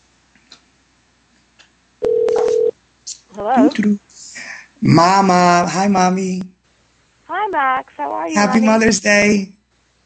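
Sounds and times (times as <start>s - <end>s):
loud electronic telephone dialing tone: 2.0s - 2.7s
speech: 3.4s - 4.1s, 4.8s - 6.5s, 7.3s - 9.6s.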